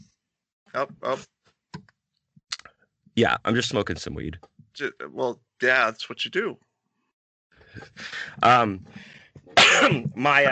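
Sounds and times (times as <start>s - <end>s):
speech: 0.7s - 1.4s, 3.2s - 6.7s, 7.8s - 10.4s
harsh coughs into a microphone: 9.5s - 10.2s.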